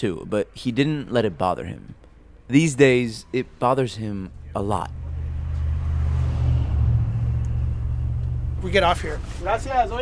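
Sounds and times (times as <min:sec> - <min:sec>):
speech: 0:00.0 - 0:05.0, 0:08.6 - 0:09.9
bus engine rumbling while riding: 0:03.0 - 0:09.9.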